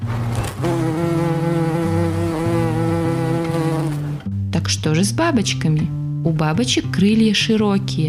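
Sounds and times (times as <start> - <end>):
bumblebee buzzing loudly: 0.6 - 4.2
speech: 4.6 - 8.0.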